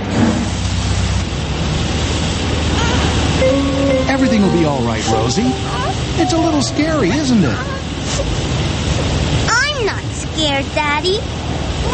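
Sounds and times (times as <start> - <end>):
low mechanical rumble of a car wash: 0.0 - 9.8
water spraying in a car wash: 0.0 - 11.9
speech: 6.2 - 8.3, 10.5 - 11.9.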